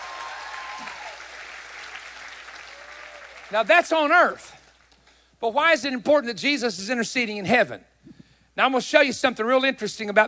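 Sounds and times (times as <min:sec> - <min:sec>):
audience clapping: 0:00.0 - 0:05.2
speech: 0:03.5 - 0:04.6, 0:05.4 - 0:07.9, 0:08.6 - 0:10.2.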